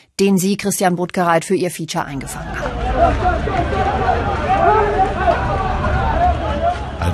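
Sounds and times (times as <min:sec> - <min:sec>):
speech: 0:00.2 - 0:05.7
crowd of construction workers shouting in protest on a new airport building site in Turkey: 0:02.3 - 0:07.1.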